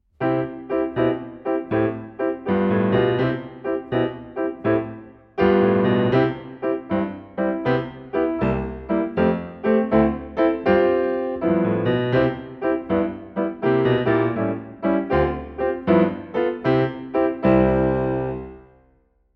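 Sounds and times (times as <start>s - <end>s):
live piano accompaniment: 0.2s - 18.7s.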